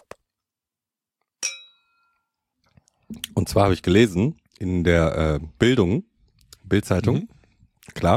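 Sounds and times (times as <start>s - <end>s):
two glasses clinking during a toast: 1.4s - 2.2s
speech: 3.4s - 6.1s, 6.7s - 8.1s.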